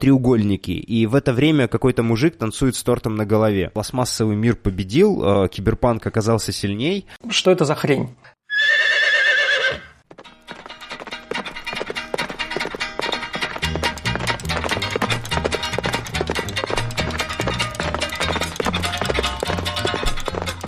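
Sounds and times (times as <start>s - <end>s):
speech: 0.0s - 8.4s
horse whinnying: 8.5s - 10.0s
clip-clopping hoofbeats: 9.7s - 20.6s.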